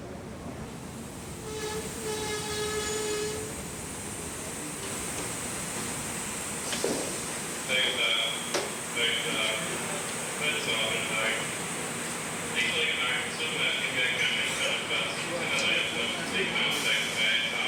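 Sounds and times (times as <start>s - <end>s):
express train arriving at a station platform: 0.0s - 17.6s.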